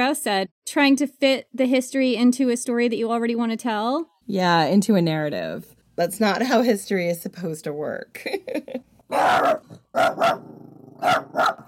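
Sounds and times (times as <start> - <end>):
speech: 0.0 - 11.6
dog barking aggressively: 9.1 - 11.6.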